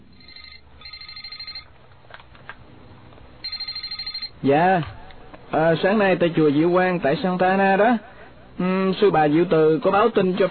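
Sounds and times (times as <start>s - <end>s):
telephone ringing with a rapid trilling bell: 0.1s - 1.7s, 3.4s - 4.4s
speech: 4.4s - 10.5s.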